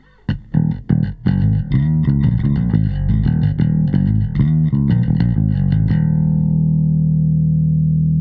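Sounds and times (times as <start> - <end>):
bass through a limiter: 0.0 - 8.1.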